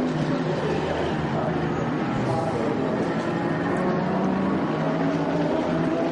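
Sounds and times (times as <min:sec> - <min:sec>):
Audi and Porsche race car engines roaring entering the pit lane: 0:00.0 - 0:06.1
dense broadband noise: 0:00.0 - 0:06.1.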